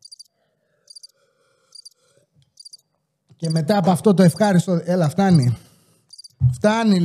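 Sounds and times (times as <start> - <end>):
cicadas chirping: 0.0 - 0.3, 0.9 - 2.0, 2.6 - 3.6, 6.1 - 6.4
speech: 3.4 - 5.7, 6.6 - 7.0.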